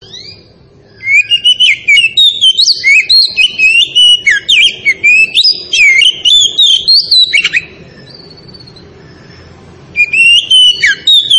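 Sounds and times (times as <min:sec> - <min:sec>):
Oriental magpie-robin singing, Tretes variety: 0:00.0 - 0:11.3.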